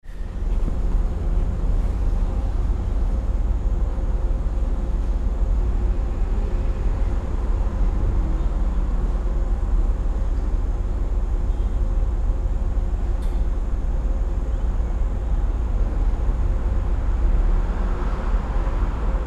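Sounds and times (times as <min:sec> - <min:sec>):
suburban train station ambience: 0:00.0 - 0:19.2.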